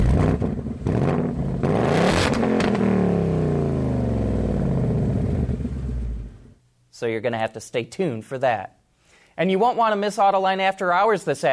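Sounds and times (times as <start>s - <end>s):
upgraded 5-liter V8 engine of a new Mustang Bullitt revving: 0.0s - 6.5s
speech: 7.0s - 8.8s, 9.4s - 11.5s.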